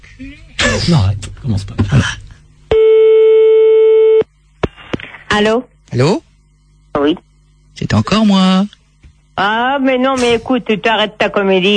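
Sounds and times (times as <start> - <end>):
speech: 0.2 - 2.2, 5.4 - 6.3, 7.0 - 8.8, 9.4 - 11.7
telephone line tone while placing a call: 2.8 - 4.2.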